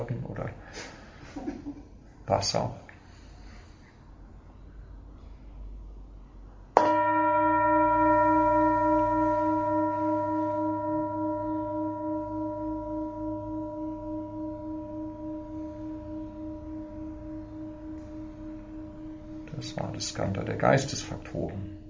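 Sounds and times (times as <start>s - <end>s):
speech: 2.3s - 2.8s
meditation gong struck in a Buddhist centre: 6.8s - 21.8s.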